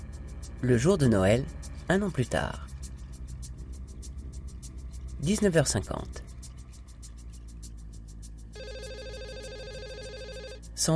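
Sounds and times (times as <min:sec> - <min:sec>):
low hum: 0:00.0 - 0:10.9
speech: 0:00.6 - 0:02.7, 0:05.2 - 0:06.2
telephone ringing in a hotel room: 0:08.6 - 0:10.7.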